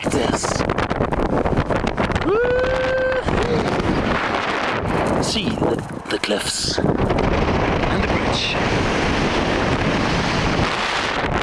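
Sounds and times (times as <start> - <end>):
roaring ocean surf: 0.0 - 11.4
wind buffeting the microphone: 0.0 - 11.4.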